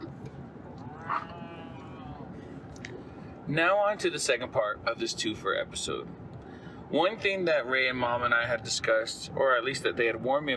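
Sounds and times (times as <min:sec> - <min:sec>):
steady low outdoor rumble: 0:00.0 - 0:10.5
cow mooing: 0:01.0 - 0:02.2
speech: 0:03.5 - 0:06.2, 0:06.9 - 0:10.5.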